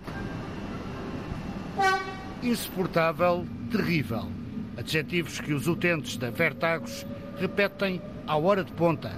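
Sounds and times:
commuter train rumbling at station: 0.0s - 9.1s
commuter train horn toot at station: 1.8s - 2.4s
speech: 2.4s - 9.1s.

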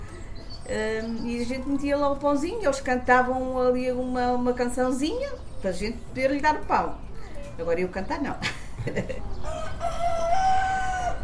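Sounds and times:
speech: 0.7s - 9.7s
laughter: 8.4s - 9.3s
rooster crowing: 9.4s - 11.2s.

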